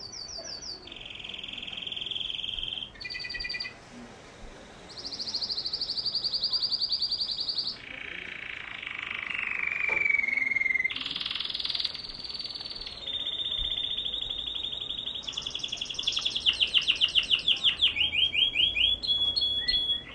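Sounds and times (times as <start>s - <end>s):
canary song: 0.0s - 3.8s, 4.9s - 20.1s.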